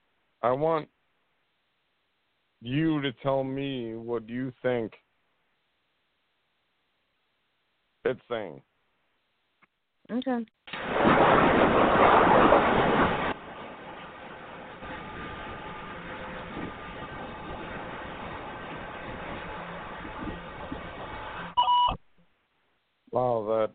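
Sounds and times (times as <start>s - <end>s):
speech: 0.4s - 1.0s, 2.6s - 5.0s, 8.0s - 8.7s, 10.1s - 13.0s
rough rushing noise: 10.8s - 21.6s
electronic beep: 21.6s - 22.0s.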